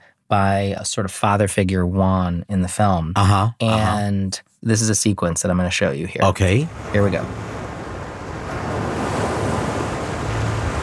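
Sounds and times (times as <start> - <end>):
speech: 0.3 - 7.5
gusty wind-like rumble: 6.3 - 10.8
sea waves washing and roaring: 6.4 - 10.8.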